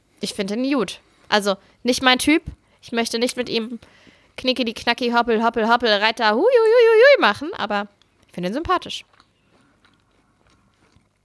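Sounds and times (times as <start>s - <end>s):
speech: 0.2s - 9.1s
chewing and swallowing food: 7.9s - 11.2s
soft crunchy bites: 9.0s - 11.2s.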